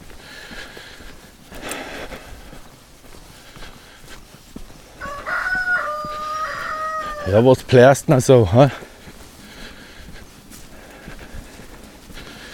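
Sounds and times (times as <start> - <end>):
faint rustling steps of someone walking with a dog: 0.0 - 12.5
outdoor noise on a cold day: 0.0 - 12.5
rooster crowing: 5.0 - 7.5
speech: 7.3 - 8.8.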